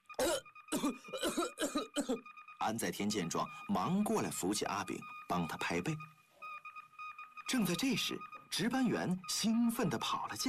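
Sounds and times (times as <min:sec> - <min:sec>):
person coughing violently after choking on a sip of tea: 0:00.2 - 0:02.2
speech: 0:00.9 - 0:01.5, 0:02.1 - 0:06.1, 0:07.5 - 0:10.4.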